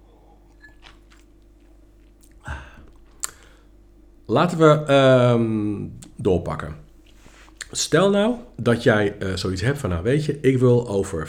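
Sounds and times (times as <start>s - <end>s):
person sipping and swallowing water: 0.0s - 3.6s
low steady hum: 0.0s - 11.2s
mouth click: 2.2s - 3.5s
speech: 4.3s - 6.8s, 7.7s - 11.2s.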